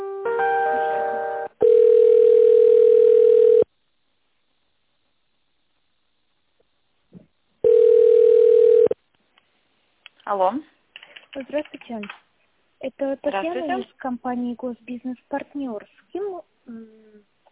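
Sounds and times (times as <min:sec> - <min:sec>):
telephone ringback tone while a call is being connected: 0:00.5 - 0:03.7, 0:07.6 - 0:09.0
speech: 0:10.4 - 0:10.7, 0:11.4 - 0:17.0.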